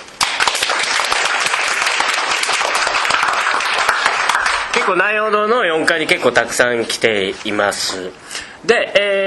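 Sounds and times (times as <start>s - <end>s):
crowd in a room applauding: 0.2s - 5.2s
speech: 4.9s - 9.2s.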